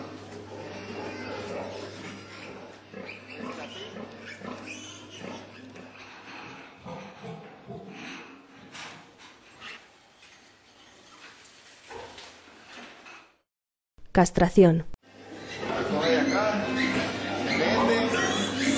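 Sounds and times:
piglets squealing loudly during tail docking: 0.0s - 8.6s, 15.2s - 18.7s
piglets grunting during tail docking: 0.0s - 10.0s, 15.1s - 18.7s
speech: 14.2s - 14.9s.

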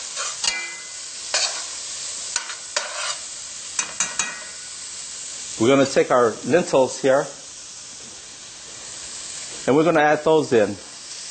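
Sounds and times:
spoon scraping a hot pan while stirring garlic: 0.0s - 4.7s
garlic sizzling in a hot pan: 0.0s - 11.3s
speech: 5.6s - 7.4s, 9.7s - 10.9s.

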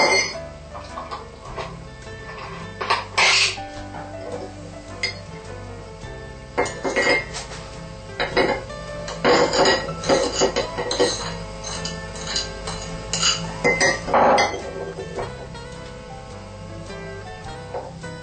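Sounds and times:
utensil clinking against a bowl while mixing soy drink with flour: 0.0s - 1.7s, 4.2s - 5.3s, 6.6s - 7.4s, 8.2s - 15.4s
scraping: 0.0s - 5.8s, 6.5s - 18.2s
steady low kitchen hum: 0.0s - 18.2s.

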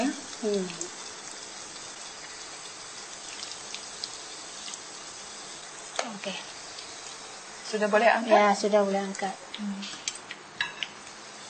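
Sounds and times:
food frying in a pan until golden yellow: 0.0s - 11.4s
speech: 0.4s - 0.8s, 6.2s - 6.6s, 7.7s - 10.0s.

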